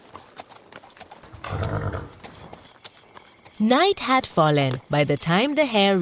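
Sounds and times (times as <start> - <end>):
horse hooves clip-clopping at a walking pace: 0.0 - 6.0
low horse whinny: 1.3 - 2.2
speech: 3.6 - 6.0.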